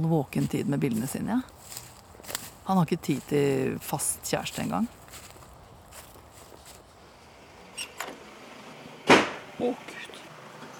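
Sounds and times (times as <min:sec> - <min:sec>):
speech: 0:00.0 - 0:01.8, 0:02.7 - 0:05.0, 0:09.6 - 0:09.9
door slamming shut in a draft: 0:09.0 - 0:09.5.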